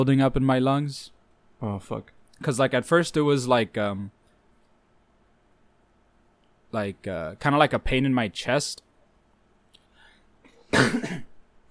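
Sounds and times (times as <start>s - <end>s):
speech: 0.0s - 4.2s, 6.7s - 8.8s, 10.7s - 11.3s
harsh cough from a person recovering from fluid buildup in the lungs: 10.5s - 11.4s.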